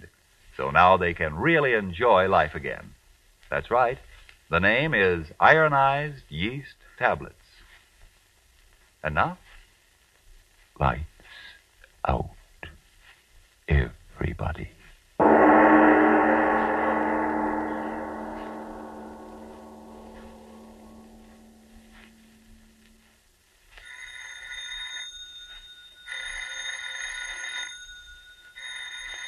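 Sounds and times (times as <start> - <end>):
speech: 0.6 - 7.4, 9.0 - 9.4, 10.8 - 11.1, 12.0 - 12.4, 13.7 - 14.8
deep resonant tone: 15.2 - 23.0
telephone bell ringing in loud jangling bursts: 23.8 - 29.2.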